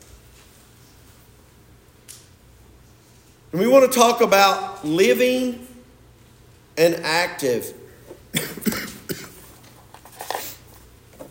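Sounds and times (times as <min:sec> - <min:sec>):
speech: 0:03.5 - 0:05.7, 0:06.8 - 0:07.8
person coughing: 0:08.3 - 0:09.5.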